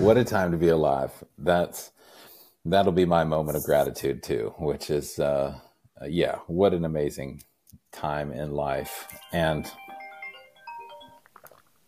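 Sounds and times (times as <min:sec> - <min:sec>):
speech: 0:00.0 - 0:02.0, 0:02.6 - 0:09.8
phone ringtone playing a bright melodic sequence of tones: 0:08.8 - 0:11.4.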